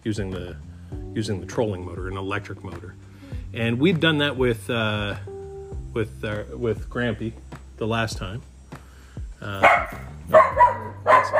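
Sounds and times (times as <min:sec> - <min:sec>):
speech: 0:00.0 - 0:05.3, 0:06.0 - 0:08.5, 0:09.4 - 0:10.1
dog barking in the background: 0:09.6 - 0:11.3.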